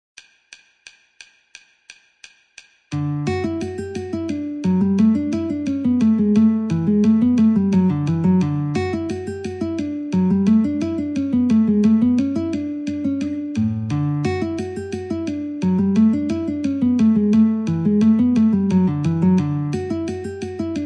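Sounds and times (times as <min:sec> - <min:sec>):
guitar: 0:02.9 - 0:20.8
metronome clicking: 0:02.9 - 0:20.8.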